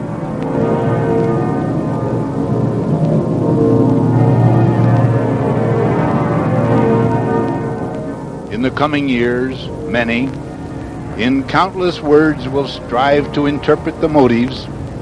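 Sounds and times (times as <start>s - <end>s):
several church bells pealing: 0.0s - 15.0s
speech: 8.6s - 10.4s, 11.2s - 14.8s.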